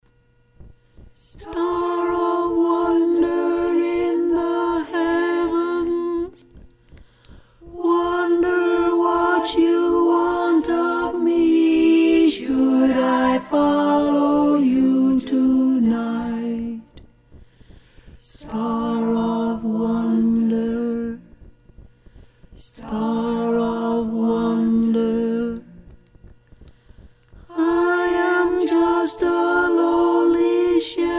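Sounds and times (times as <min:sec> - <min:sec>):
choir singing a carol in harmony with mezzo voice: 0:01.2 - 0:06.4, 0:07.7 - 0:17.0, 0:18.2 - 0:21.4, 0:22.6 - 0:25.9, 0:27.5 - 0:31.1.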